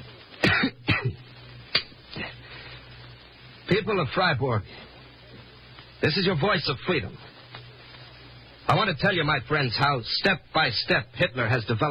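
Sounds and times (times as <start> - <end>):
faint low hum: 0.0 - 11.8
person coughing: 0.4 - 1.2
speech: 3.7 - 4.9, 6.0 - 7.3, 8.7 - 11.8.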